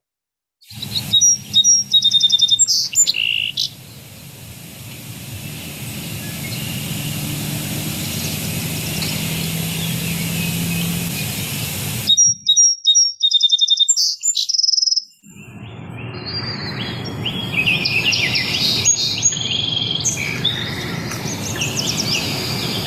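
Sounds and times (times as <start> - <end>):
outdoor hiss: 0.7 - 12.2, 16.7 - 22.8
birds chirping in a recording played from a bird-identification app: 0.7 - 22.8.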